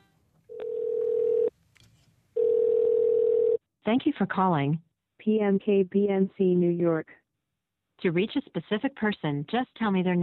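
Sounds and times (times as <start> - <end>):
telephone ringback tone over the line: 0.0 - 1.5, 2.4 - 3.6
speech: 3.9 - 7.2, 8.0 - 10.2.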